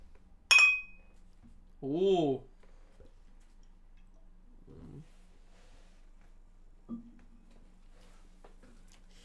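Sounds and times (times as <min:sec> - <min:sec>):
glass bottles clinking together in a toast: 0:00.5 - 0:01.0
speech: 0:01.8 - 0:02.5.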